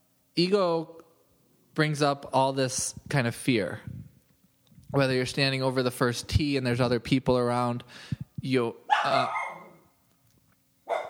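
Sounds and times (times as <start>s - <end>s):
speech: 0.4s - 1.0s, 1.8s - 3.9s, 4.9s - 9.4s
household dog barking: 8.9s - 9.8s, 10.9s - 11.0s.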